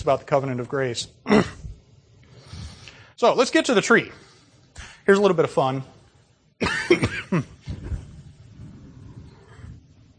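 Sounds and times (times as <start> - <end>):
speech: 0.0 - 1.6, 3.2 - 6.0, 6.6 - 7.6
person coughing harshly: 6.6 - 7.7.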